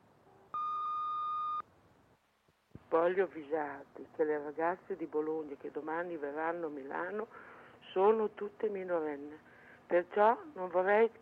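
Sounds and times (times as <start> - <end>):
answering machine beep: 0.6 - 1.6
speech: 2.9 - 11.1.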